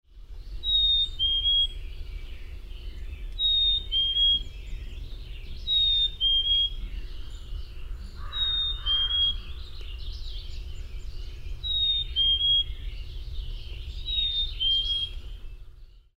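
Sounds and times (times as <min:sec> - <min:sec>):
Black-capped Chickadee calling: 0:00.6 - 0:01.8, 0:03.3 - 0:04.6, 0:05.6 - 0:10.0, 0:11.6 - 0:12.9, 0:14.0 - 0:15.3.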